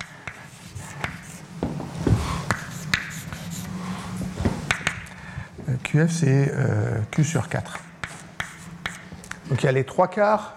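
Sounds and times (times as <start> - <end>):
handwritten strokes during a lecture on DNA charge: 0.0 - 5.0, 7.6 - 9.4
speech: 6.0 - 7.9, 9.6 - 10.5.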